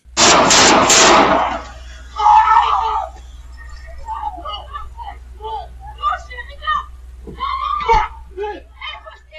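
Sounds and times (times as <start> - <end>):
low hum: 0.0 - 9.3
rapid burst of gunshots from a daytime shooting recorded by surveillance camera: 0.2 - 1.7
people talking: 1.8 - 9.3.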